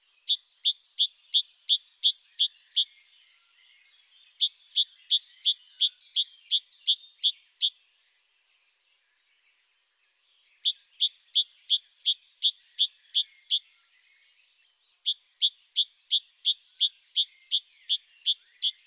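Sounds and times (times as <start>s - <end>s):
great tit singing on a Sunday morning in the Urne valley: 0.0s - 8.8s, 9.5s - 18.8s.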